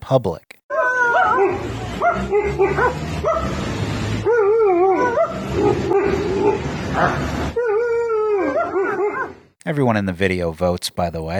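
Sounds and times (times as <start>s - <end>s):
speech: 0.1s - 0.5s, 1.4s - 4.9s, 5.6s - 7.4s, 9.6s - 11.3s
dog whimpering and barking with short yelps: 0.7s - 3.6s, 4.2s - 9.4s.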